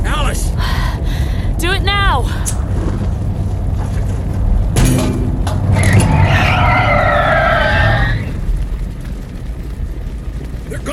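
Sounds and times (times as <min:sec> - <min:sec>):
car rumbling along: 0:00.0 - 0:10.9
low road noise: 0:00.0 - 0:10.9
car tires screeching as it skids to a halt: 0:02.4 - 0:08.7.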